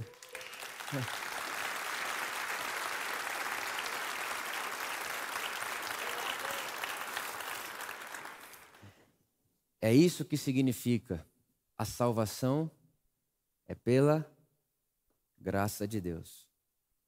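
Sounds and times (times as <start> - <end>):
large audience applauding: 0.0 - 8.9
speech: 0.9 - 1.2, 9.8 - 12.8, 13.7 - 14.3, 15.4 - 16.5.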